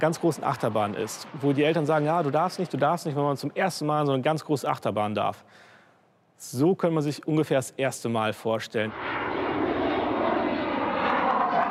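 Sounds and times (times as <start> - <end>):
fixed-wing aircraft engine roar on a low-level training flight over sea and land: 0.0 - 3.9, 8.8 - 11.6
speech: 0.0 - 5.7, 6.4 - 9.2.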